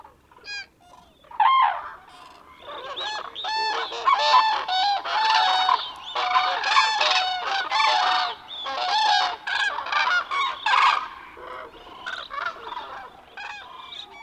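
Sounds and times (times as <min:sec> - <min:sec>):
large flock of cranes calling at dawn: 0:00.0 - 0:14.2.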